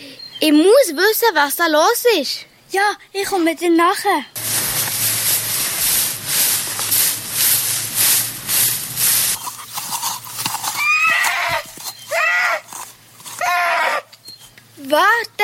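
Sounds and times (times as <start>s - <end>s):
speech: 0.4s - 4.4s
rapid rhythmic hoofbeats or rustling noise: 4.4s - 14.4s
horse whinnying in wavering bursts: 10.6s - 14.2s.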